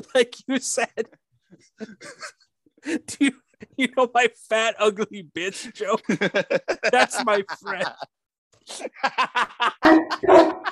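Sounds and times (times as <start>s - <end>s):
speech: 0.0s - 10.6s
laughter: 1.6s - 2.5s, 6.0s - 10.6s
dog barking: 9.8s - 10.6s.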